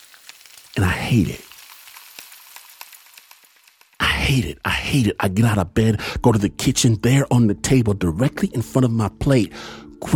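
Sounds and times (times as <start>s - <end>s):
sausages frying in a pan with hot fat popping: 0.0s - 4.4s
speech: 0.8s - 1.5s, 4.3s - 10.1s.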